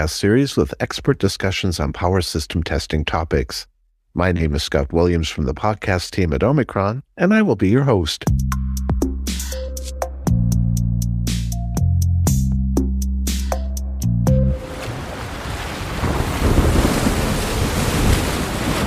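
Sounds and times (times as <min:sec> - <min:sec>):
speech: 0:00.0 - 0:08.5
plucked musical tones: 0:08.5 - 0:15.0
crashing ocean waves: 0:14.4 - 0:18.8.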